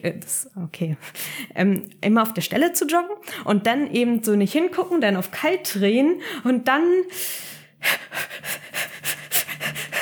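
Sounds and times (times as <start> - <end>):
speech: 0.0 - 8.6
person breathing deeply and rapidly: 7.1 - 10.0.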